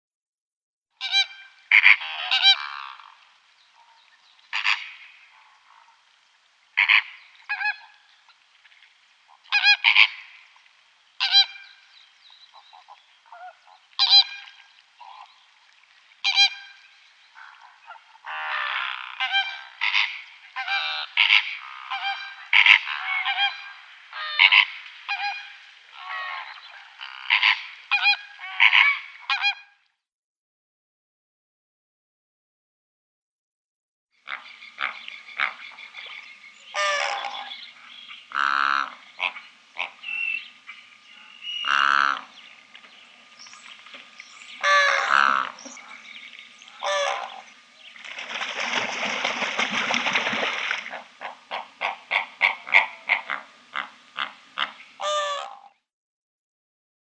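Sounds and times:
Greater Flamingo calling: 1.0 - 3.2, 3.8 - 6.0, 6.8 - 8.4, 9.3 - 10.4, 11.2 - 15.4, 16.2 - 29.7, 34.2 - 55.8.

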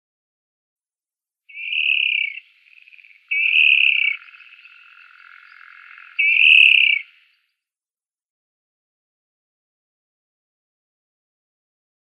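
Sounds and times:
water rail display call: 1.5 - 7.6.

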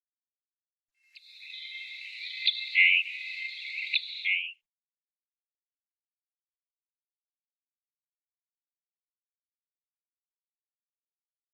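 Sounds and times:
Scarlet Tanager calling: 1.2 - 4.6.

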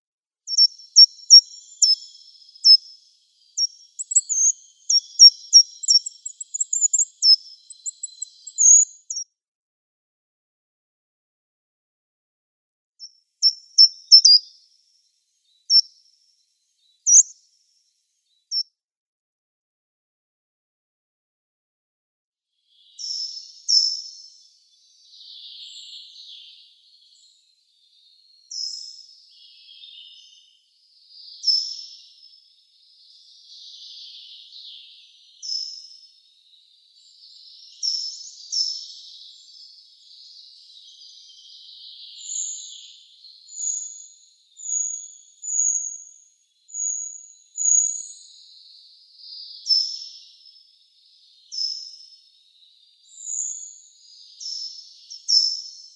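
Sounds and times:
Short-toed Treecreeper calls: 0.5 - 9.2, 13.4 - 14.5, 16.8 - 17.3, 22.8 - 27.4, 28.0 - 55.9.

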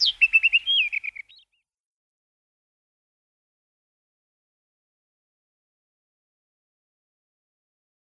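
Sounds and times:
black bush robin singing: 0.0 - 1.7.

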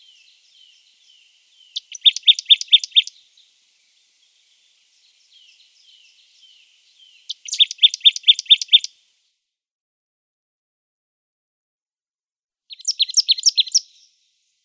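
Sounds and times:
marsh tit song of rattling high repeated notes: 0.0 - 3.2, 5.2 - 8.9, 12.7 - 14.2.

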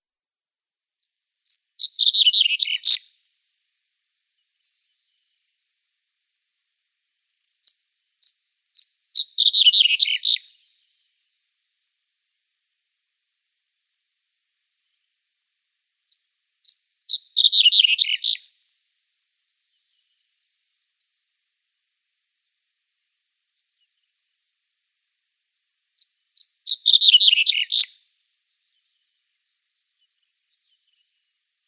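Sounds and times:
Red-headed Bunting song: 1.0 - 3.2, 7.6 - 11.1, 16.1 - 18.5, 19.4 - 21.2, 25.4 - 31.4.

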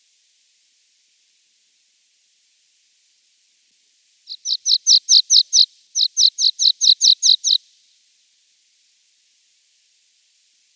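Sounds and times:
Water Pipit singing high repeated downslurred chirps: 4.3 - 7.6.

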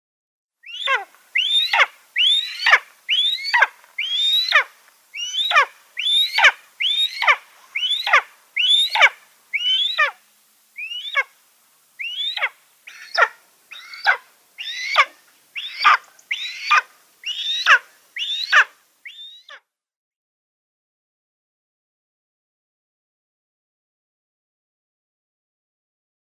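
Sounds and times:
Imperial Eagle nestling: 0.6 - 10.2, 10.8 - 11.3, 12.0 - 19.5.

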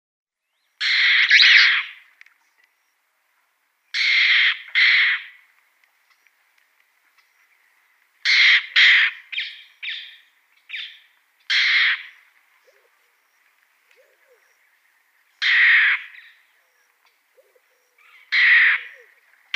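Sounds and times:
Abyssinian roller calls: 0.7 - 2.1, 3.9 - 5.4, 8.2 - 19.5.

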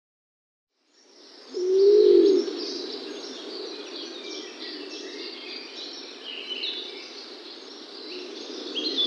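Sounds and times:
male Laurel pigeon cooing in display: 1.6 - 5.4, 8.1 - 9.0.

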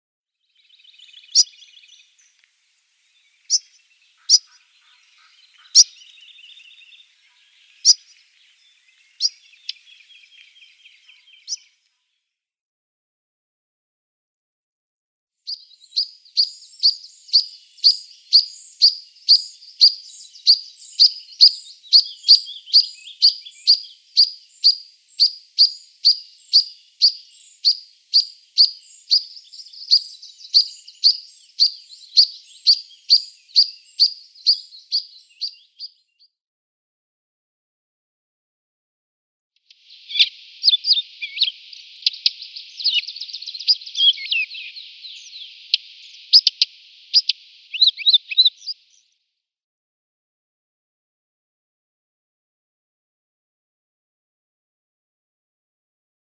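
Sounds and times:
European Pied Flycatcher calls: 0.6 - 2.4, 3.0 - 11.7, 15.5 - 35.9, 39.7 - 48.8.

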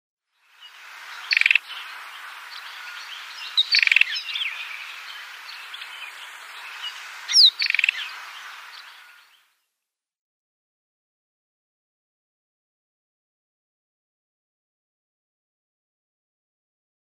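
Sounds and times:
White-throated Robin calling: 0.6 - 9.4.

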